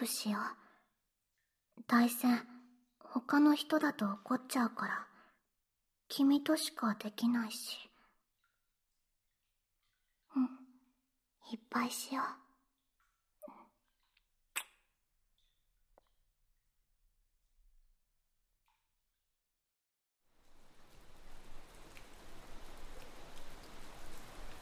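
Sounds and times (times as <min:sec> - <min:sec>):
speech: 0:00.0 - 0:00.6, 0:01.8 - 0:05.1, 0:06.1 - 0:07.9, 0:10.4 - 0:10.6, 0:11.5 - 0:12.4
rain falling: 0:20.3 - 0:24.6.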